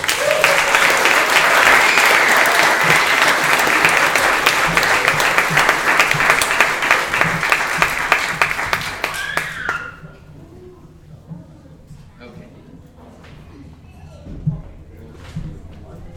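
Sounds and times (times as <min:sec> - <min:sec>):
audience applause: 0:00.0 - 0:10.1
faint murmur of voices: 0:00.0 - 0:16.1.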